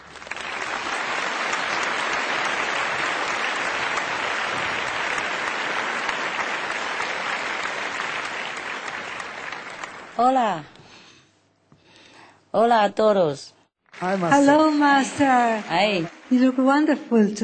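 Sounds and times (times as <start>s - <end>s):
audience applause welcoming a guest: 0.0s - 10.4s, 13.9s - 17.4s
speech: 10.2s - 10.7s, 12.5s - 17.4s.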